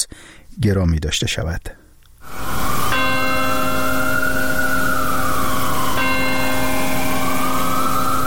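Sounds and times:
speech: 0.6 - 1.8
siren wailing: 2.2 - 8.2
large church bell tolling: 2.5 - 8.2.

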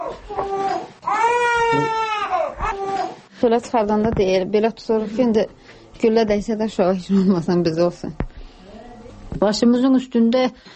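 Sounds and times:
two-month-old baby crying in a family home: 0.0 - 3.3
speech: 3.4 - 8.2, 9.3 - 10.7.

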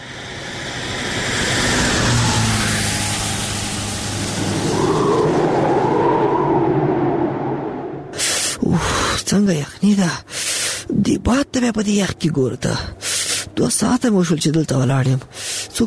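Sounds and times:
lorry engine roaring on a cold windy desert roadside: 0.0 - 8.4
speech: 9.6 - 15.8.

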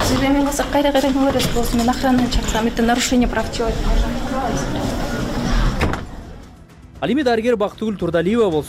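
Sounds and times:
speech: 0.1 - 5.0, 7.0 - 8.6
doctor's door slamming shut: 5.4 - 6.3.

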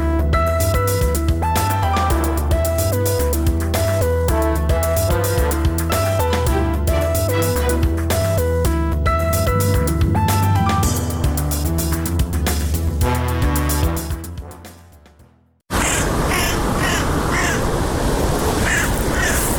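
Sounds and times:
music: 0.0 - 15.6
crow calling with harsh rasping cries: 15.7 - 17.7, 18.6 - 19.5
steady noisy outdoor background: 15.7 - 19.5.

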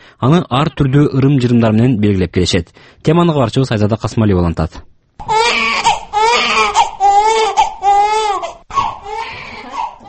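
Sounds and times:
speech: 0.2 - 5.6
newborn baby crying in high-pitched wailing bursts: 5.2 - 10.0.

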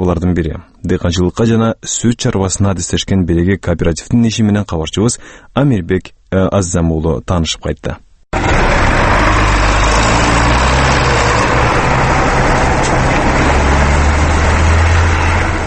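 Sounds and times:
speech: 0.1 - 8.6
wheeled John Deere tractor engine ploughing a field at the edge of a village: 8.4 - 15.6.

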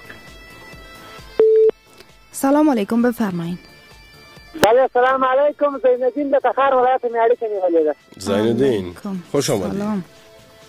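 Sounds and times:
telephone line tone while connecting a radio call-in caller: 1.4 - 1.8
speech: 2.4 - 3.7, 4.7 - 10.2.

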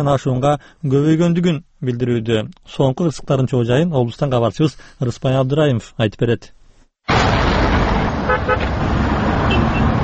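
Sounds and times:
speech: 0.0 - 7.5
cars driving slowly through road traffic at a roundabout: 7.1 - 10.0
car horn toots: 8.2 - 8.8, 9.4 - 10.0.

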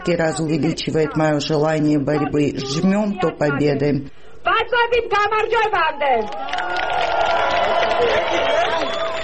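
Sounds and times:
speech: 0.0 - 9.0
large crowd clapping: 6.2 - 9.2.

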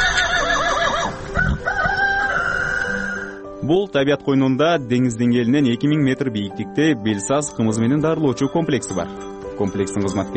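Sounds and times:
herd of horses neighing in a mountain pasture: 0.0 - 3.5
speech: 3.7 - 10.3.

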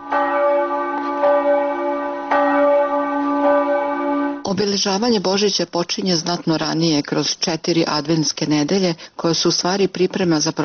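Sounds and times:
church bells ringing for morning mass: 0.0 - 4.5
speech: 4.5 - 10.6.

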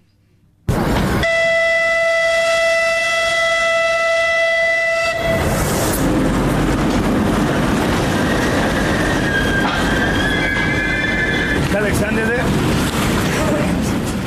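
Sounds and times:
passenger train rumbling and clattering along the rails: 0.6 - 14.2
passenger train multi-tone horn: 1.2 - 5.5
high metallic squeals of a passenger train: 8.1 - 11.6.

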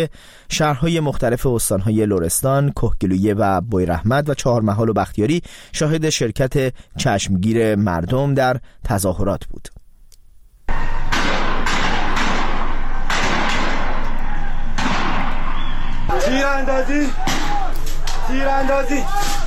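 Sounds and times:
speech: 0.0 - 9.8, 16.2 - 17.4, 18.3 - 19.3
people shouting and crying out: 10.7 - 11.2, 11.9 - 19.4
gunshots during an anti-government street protest in Borujerd Iran: 10.7 - 16.3, 17.0 - 18.2
noisy crowd at a street protest: 10.7 - 19.4.

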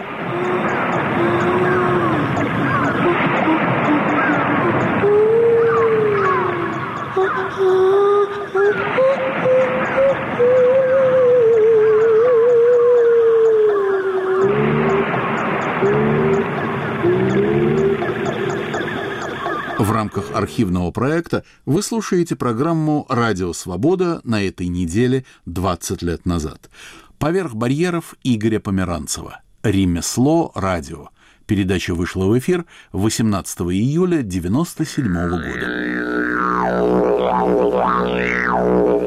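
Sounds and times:
seal calls: 0.0 - 20.4, 35.0 - 39.0
speech: 20.4 - 39.0.

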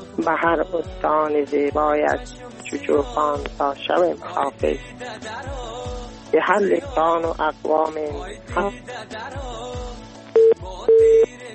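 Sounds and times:
speech: 0.2 - 9.8
phone call disconnection tone beeps: 10.4 - 11.3.

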